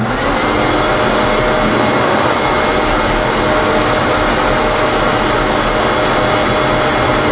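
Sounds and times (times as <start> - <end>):
large vacuum cleaner running with its smaller hose removed: 0.0 - 7.3.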